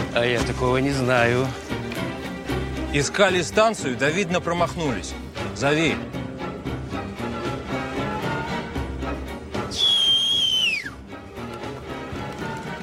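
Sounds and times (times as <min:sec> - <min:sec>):
music: 0:00.0 - 0:12.8
speech: 0:00.2 - 0:02.0, 0:02.9 - 0:06.2
man giving a loud sustained whistle as a signal: 0:09.7 - 0:11.0.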